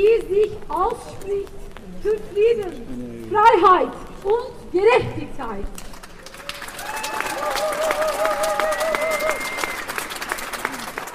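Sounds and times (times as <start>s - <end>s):
speech: 0.0s - 5.9s
large crowd of spectators in the rain whooping and cheering: 6.2s - 11.1s.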